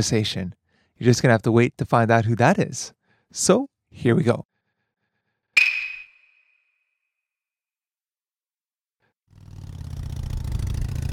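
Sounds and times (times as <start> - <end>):
speech: 0.0 - 4.5
sharp metallic ping: 5.6 - 6.7
motorcycle engine running: 9.3 - 11.1.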